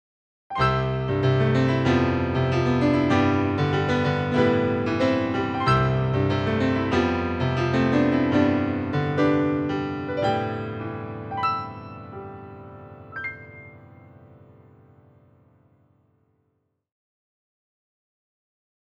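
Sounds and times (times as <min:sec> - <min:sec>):
stage piano: 0:00.5 - 0:15.8.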